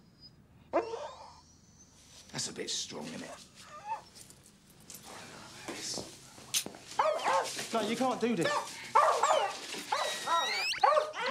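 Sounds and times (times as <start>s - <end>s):
dog squeaking and whining: 0.1s - 2.0s, 3.6s - 4.1s, 7.0s - 11.2s
speech: 2.4s - 3.7s, 7.7s - 9.0s.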